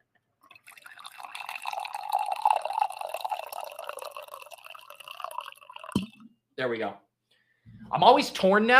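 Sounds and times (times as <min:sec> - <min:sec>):
coffee pouring into a mug: 0:00.5 - 0:06.2
speech: 0:06.6 - 0:07.0, 0:07.9 - 0:08.7.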